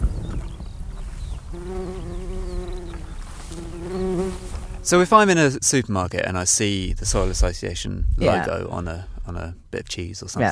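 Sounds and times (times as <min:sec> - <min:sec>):
bees buzzing in an open field: 0:00.0 - 0:05.1
faint outdoor ambience: 0:00.0 - 0:10.5
speech: 0:04.8 - 0:10.5.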